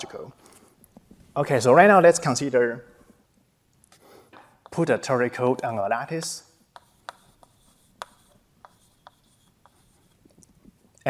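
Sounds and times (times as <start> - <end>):
speech: 0.0 - 0.5, 1.4 - 2.9, 4.8 - 6.5
writing on a board while drawing a 2D lattice: 4.0 - 4.9, 6.0 - 11.0.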